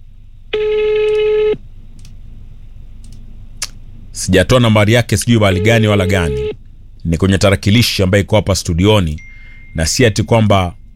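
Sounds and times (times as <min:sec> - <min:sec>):
telephone ringing for an incoming call in a radio studio: 0:00.5 - 0:01.6, 0:05.4 - 0:06.6
speech: 0:04.2 - 0:10.8.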